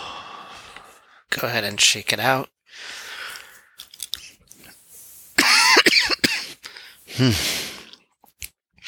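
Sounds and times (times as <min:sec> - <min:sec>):
speech: 0:01.4 - 0:02.9, 0:07.2 - 0:07.6
harsh coughing fit: 0:05.3 - 0:07.8.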